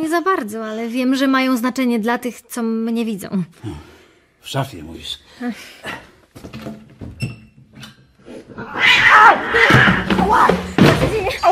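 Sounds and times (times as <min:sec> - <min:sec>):
speech: 0:00.1 - 0:06.8, 0:08.6 - 0:11.5
thumps and knocks from a door or cupboard: 0:06.3 - 0:08.0, 0:09.6 - 0:11.5
cat yowling in drawn-out wavering wails: 0:08.6 - 0:10.0.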